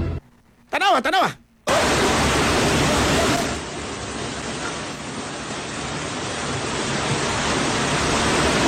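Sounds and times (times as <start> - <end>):
speech: 0.8 - 1.4
floodwater carrying garbage rushing through a creek in barangay San Nicolas Proper: 1.7 - 8.6.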